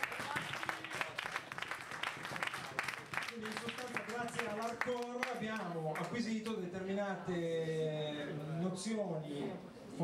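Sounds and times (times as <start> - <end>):
crowd applause: 0.0 - 6.2
speech: 3.4 - 10.0.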